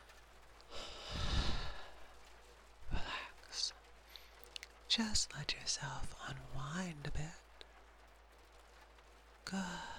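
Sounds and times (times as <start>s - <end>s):
deep breath during a relaxation exercise: 0.7s - 2.0s
speech: 4.9s - 7.5s, 9.5s - 9.9s.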